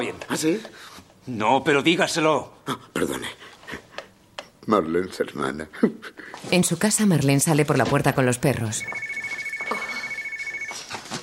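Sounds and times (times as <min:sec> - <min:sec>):
speech: 0:00.0 - 0:03.8, 0:04.7 - 0:09.2
faint noise: 0:00.0 - 0:11.2
telephone ringing in a house: 0:08.5 - 0:11.1.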